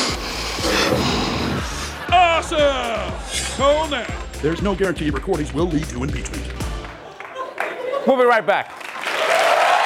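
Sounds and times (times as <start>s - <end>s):
loud breathy sniffs through the nose: 0.0s - 2.0s
laughter: 0.7s - 9.7s
speech: 2.5s - 6.6s, 8.0s - 8.8s.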